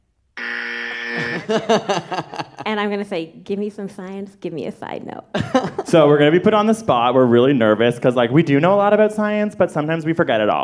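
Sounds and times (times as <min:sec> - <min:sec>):
small electric buzzer: 0:00.4 - 0:02.6
laughter: 0:01.1 - 0:02.9, 0:05.3 - 0:06.5
speech: 0:01.5 - 0:10.6.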